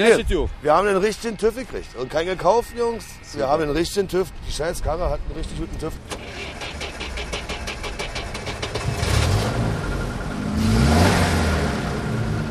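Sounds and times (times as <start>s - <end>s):
speech: 0.0s - 6.7s
old-timer car engine cranking, starting and revving: 6.0s - 12.5s.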